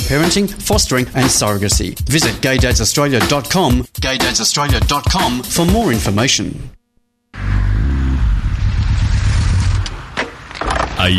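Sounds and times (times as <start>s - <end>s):
speech: 0.1s - 6.8s, 11.0s - 11.1s
motorcycle engine starting and revving: 7.3s - 10.2s.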